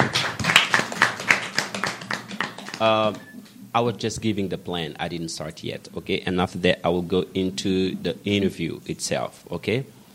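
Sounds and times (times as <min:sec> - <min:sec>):
small group clapping hands: 0:00.0 - 0:03.3
speech: 0:02.8 - 0:10.0.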